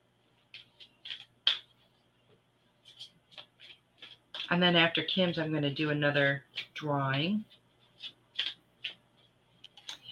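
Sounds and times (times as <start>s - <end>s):
deck of cards being shuffled: 0.4s - 2.0s, 2.8s - 4.6s, 6.5s - 10.0s
speech: 4.5s - 7.5s.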